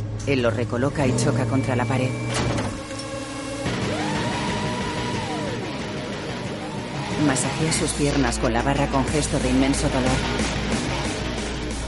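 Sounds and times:
speech: 0.2s - 2.6s, 7.2s - 10.8s
garage door lowering onto a car trunk, mechanical rumble with whining motor: 0.8s - 7.0s.

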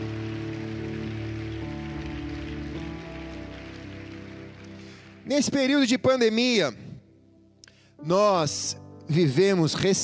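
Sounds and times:
crowd clapping loudly: 0.0s - 6.0s
sustained keyboard or organ chords: 0.0s - 10.0s
speech: 5.3s - 6.8s, 8.0s - 10.0s.

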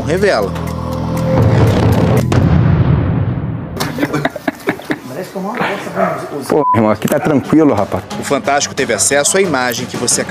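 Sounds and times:
speech: 0.1s - 2.5s, 4.0s - 4.4s, 5.2s - 10.2s
laughter: 3.8s - 8.1s
gunshots fired during an incident in Rio de Janeiro: 5.6s - 6.0s.

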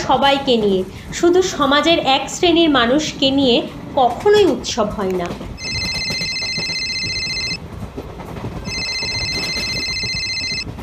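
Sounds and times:
speech: 0.1s - 5.6s
telephone ringing for an incoming call: 5.6s - 7.6s, 8.6s - 10.8s.

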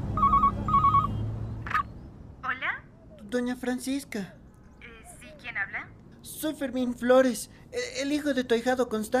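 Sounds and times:
telephone ringing as a call is placed from a public phone kiosk: 0.2s - 1.8s
speech: 3.3s - 4.4s, 6.2s - 9.1s.

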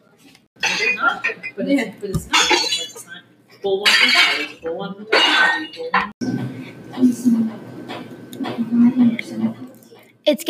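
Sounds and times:
plates shattering: 0.6s - 1.4s, 2.3s - 3.0s, 3.8s - 6.1s
speech: 0.9s - 7.7s, 8.5s - 9.7s, 10.3s - 10.4s.

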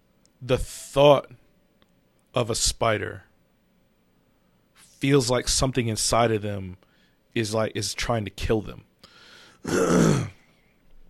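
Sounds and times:
speech: 0.4s - 1.4s, 2.4s - 3.3s, 5.0s - 8.9s, 9.6s - 10.4s
harsh rasping throat-clearing cough: 9.6s - 10.5s.

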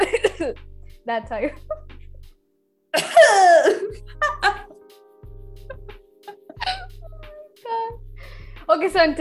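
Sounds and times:
person forcing a fake cough: 0.0s - 0.6s, 3.0s - 4.7s, 6.5s - 7.0s
speech: 0.4s - 1.8s, 2.9s - 4.6s, 8.7s - 9.1s.

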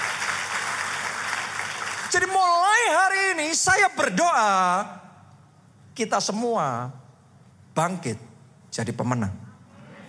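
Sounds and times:
crowd applauding in a large room: 0.0s - 2.4s
speech: 2.1s - 5.1s, 6.0s - 7.0s, 7.8s - 9.4s.

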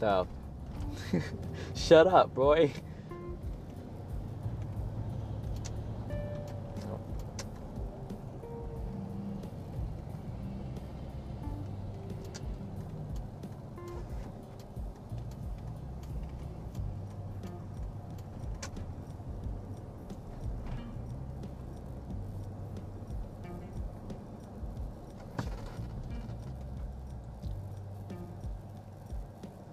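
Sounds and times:
speech: 0.0s - 0.4s, 1.0s - 2.9s
car engine and tyre drone moving through road traffic: 0.0s - 29.7s
faint passing vehicles: 0.0s - 29.7s
small clicks: 4.5s - 8.6s, 11.6s - 29.7s.

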